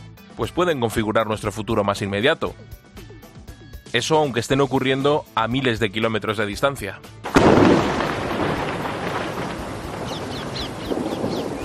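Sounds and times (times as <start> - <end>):
speech: 0.4 - 2.8, 3.9 - 7.2
heavy explosion booming in Gaza: 7.3 - 11.6
birds chirping: 8.4 - 11.6.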